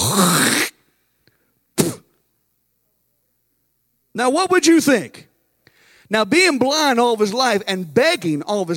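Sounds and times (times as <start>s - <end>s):
man's voice imitating rasping throat hawking: 0.0s - 0.9s, 1.8s - 2.2s
speech: 4.2s - 5.3s, 6.1s - 8.7s.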